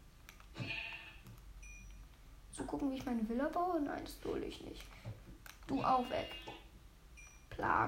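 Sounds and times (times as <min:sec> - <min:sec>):
video game sheep bleating: 0:00.6 - 0:01.2, 0:05.7 - 0:06.7
speech: 0:02.7 - 0:06.5, 0:07.6 - 0:07.8.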